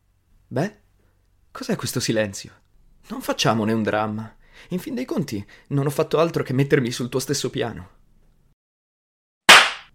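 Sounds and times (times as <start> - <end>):
speech: 0.5 - 0.8, 1.6 - 8.0
violent slap across the face: 9.5 - 9.9.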